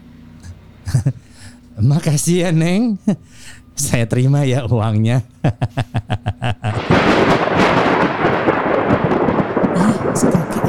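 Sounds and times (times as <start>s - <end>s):
laughter: 0.4s - 7.1s
dense roar of storm noise: 0.4s - 10.6s
rhythmic thuds: 0.4s - 10.6s
speech: 1.8s - 6.6s
loud sustained rolling thunder: 6.4s - 10.6s.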